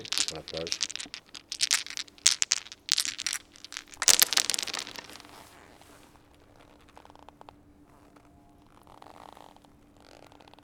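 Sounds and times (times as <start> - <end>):
speech: 0.0 - 1.2
six dice shaken and rolled on a bare surface: 0.0 - 5.4.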